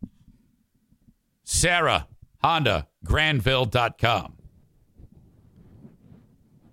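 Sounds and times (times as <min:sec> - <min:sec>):
speech: 0:01.6 - 0:04.4
microphone wind sock rubbing against the microphone: 0:04.4 - 0:06.7.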